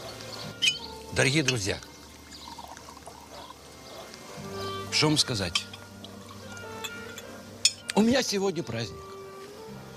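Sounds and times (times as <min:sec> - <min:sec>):
drinks poured into shot glasses at a celebratory dinner table: 0:00.3 - 0:08.1
speech: 0:01.1 - 0:01.9, 0:05.0 - 0:05.7, 0:08.0 - 0:09.1.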